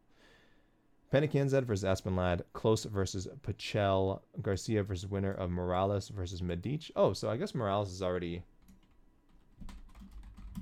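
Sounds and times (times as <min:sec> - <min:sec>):
speech: 0:01.1 - 0:08.5
typing on a computer keyboard: 0:08.6 - 0:10.5.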